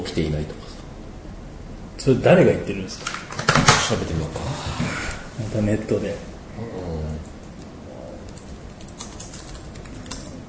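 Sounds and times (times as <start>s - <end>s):
low hum: 0.0s - 10.4s
speech: 0.1s - 0.7s, 2.0s - 3.2s, 3.9s - 7.3s
typing on a computer keyboard: 8.3s - 10.4s.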